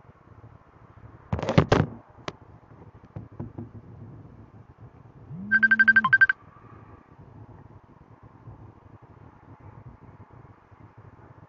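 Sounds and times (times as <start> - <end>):
incoming-call phone ringtone of short electronic beeps: 5.3 - 6.4.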